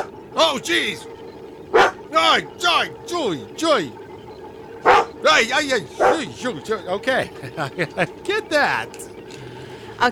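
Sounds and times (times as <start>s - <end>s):
speech: 0.4s - 1.1s, 2.1s - 4.0s, 4.9s - 9.1s, 10.0s - 10.1s
dog barking with sharp yelping barks: 1.8s - 2.0s, 4.9s - 5.1s
laughter: 5.9s - 8.9s.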